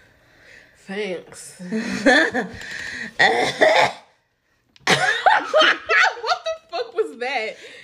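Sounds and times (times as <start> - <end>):
speech: 0.9 - 4.0, 7.2 - 7.8
harsh raspy coughing fit: 3.2 - 4.1, 4.8 - 5.9.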